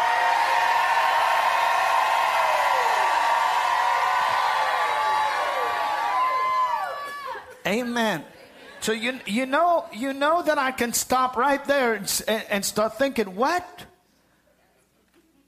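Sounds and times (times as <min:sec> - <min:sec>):
large audience jumping up and shouting: 0:00.0 - 0:07.5
speech: 0:07.7 - 0:13.8.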